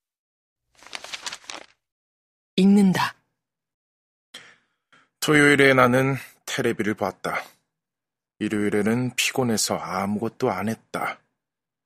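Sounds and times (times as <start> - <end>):
sheet of paper rustling as it is picked up: 0.7 - 1.8
speech: 2.6 - 3.2, 5.3 - 7.6, 8.4 - 11.2.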